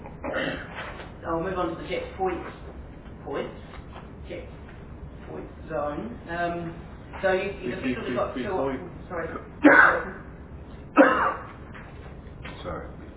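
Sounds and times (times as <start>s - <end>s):
person coughing quietly: 0.0s - 0.7s, 11.0s - 11.5s
speech: 1.3s - 4.6s, 5.3s - 10.2s.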